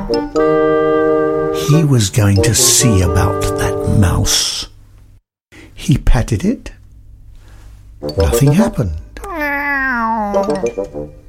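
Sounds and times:
speech: 0.1s - 0.5s, 1.7s - 4.7s, 5.8s - 6.8s, 8.0s - 9.0s, 10.3s - 11.2s
person imitating a cat's meow: 9.2s - 10.6s.

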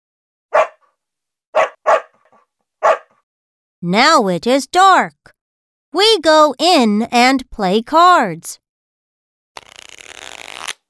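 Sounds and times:
dog barking: 0.5s - 0.8s, 1.6s - 3.2s
speech: 3.8s - 8.6s.

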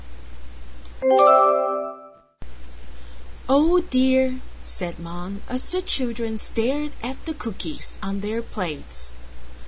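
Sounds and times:
doorbell chiming a clear ding-dong: 1.0s - 2.2s
speech: 3.5s - 9.2s.

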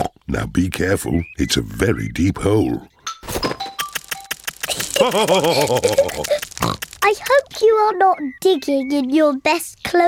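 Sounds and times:
speech: 0.3s - 3.5s, 5.0s - 10.0s
laughter: 4.7s - 6.5s
person imitating pig snorts and grunts: 6.2s - 7.0s.

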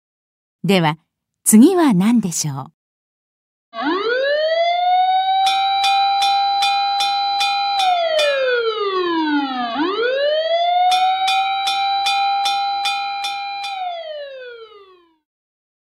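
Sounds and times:
speech: 0.6s - 2.8s
fire engine siren wailing: 3.8s - 15.2s
fire engine bell clanging rapidly: 5.5s - 8.8s, 10.9s - 14.4s.

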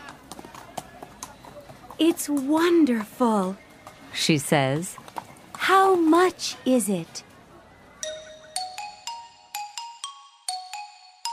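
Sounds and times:
ridden horse's hooves clip-clopping: 0.0s - 6.3s
speech: 2.0s - 3.6s, 4.2s - 5.0s, 5.6s - 7.3s.

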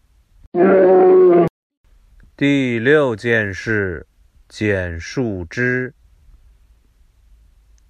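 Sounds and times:
speech: 0.6s - 0.9s, 2.4s - 6.0s
bear howling: 0.6s - 1.5s.

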